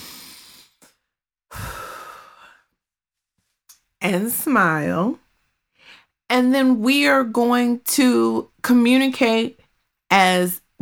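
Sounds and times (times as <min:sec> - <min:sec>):
person taking a deep breath: 0:00.0 - 0:00.8, 0:01.5 - 0:02.7, 0:05.8 - 0:06.1
speech: 0:04.0 - 0:05.2, 0:06.3 - 0:10.6.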